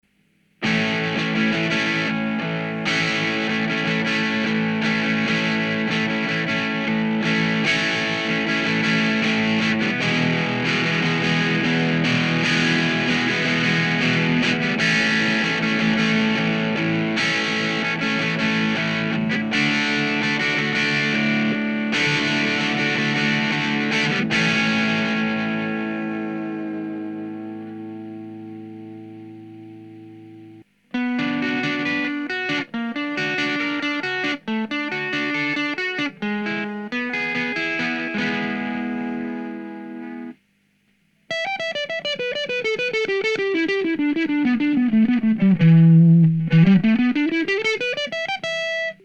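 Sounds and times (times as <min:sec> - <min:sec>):
ENGL Powerball electric guitar amplifier: 0:00.0 - 0:49.0.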